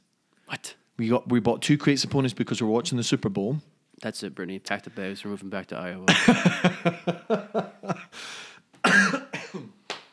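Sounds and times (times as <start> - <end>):
speech: 1.0 - 8.3
laughter: 6.1 - 8.2
person coughing: 8.8 - 9.8.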